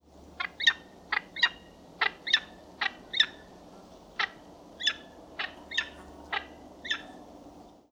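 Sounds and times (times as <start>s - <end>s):
peregrine falcon: 0.2s - 7.8s.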